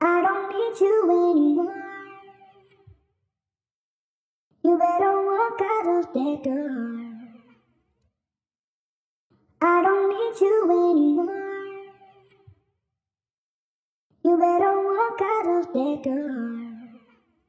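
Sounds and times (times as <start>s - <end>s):
person singing in G minor: 0.0s - 2.7s, 4.6s - 7.5s, 9.6s - 12.1s, 14.3s - 17.1s.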